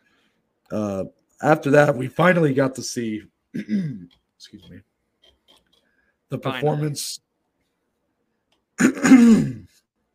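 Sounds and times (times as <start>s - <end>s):
speech: 0.7s - 4.9s, 6.3s - 7.2s, 8.8s - 9.7s
person clearing throat: 3.5s - 4.1s, 8.8s - 9.8s.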